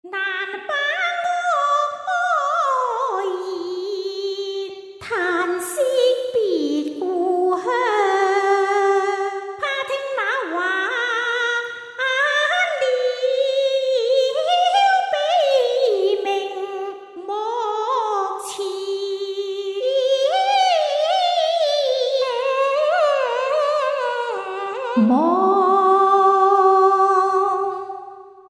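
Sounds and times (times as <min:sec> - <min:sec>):
Chinese opera diva singing phrases: 0:00.0 - 0:28.1.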